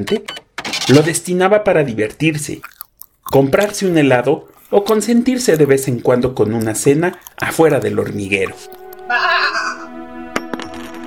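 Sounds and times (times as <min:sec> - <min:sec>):
speech: 0:00.0 - 0:02.7, 0:03.3 - 0:09.8
loud wavering sheep bleat: 0:09.0 - 0:09.9.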